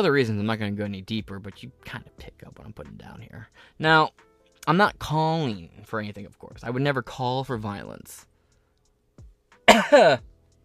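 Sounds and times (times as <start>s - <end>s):
speech: 0.0s - 8.3s, 9.7s - 10.3s
person coughing: 9.7s - 10.2s.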